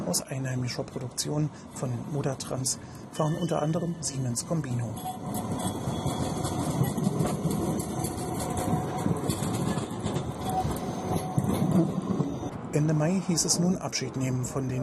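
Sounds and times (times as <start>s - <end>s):
tram rumbling along its rails: 0.0s - 14.8s
speech: 0.1s - 6.2s, 12.8s - 14.8s
faint metallic squeal and rattle of tram: 5.0s - 12.5s.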